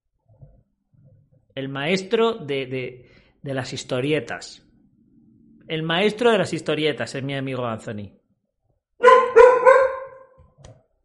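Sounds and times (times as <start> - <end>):
speech: 1.6 - 4.6, 5.7 - 8.2
angry dog barking: 9.0 - 10.4.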